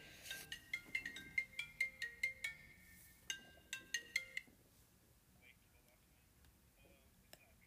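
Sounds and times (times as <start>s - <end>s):
phone ringing with bright electronic tones: 0.0s - 4.5s
faint noise: 0.0s - 7.6s.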